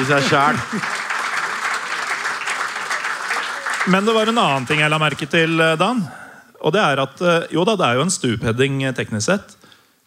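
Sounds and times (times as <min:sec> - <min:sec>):
speech: 0:00.0 - 0:01.0, 0:03.8 - 0:09.6
applause from many clapping hands: 0:00.0 - 0:05.6.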